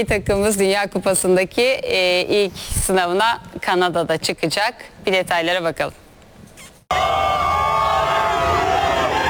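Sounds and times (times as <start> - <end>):
speech: 0.0 - 6.0
fans chanting and cheering: 6.9 - 9.2.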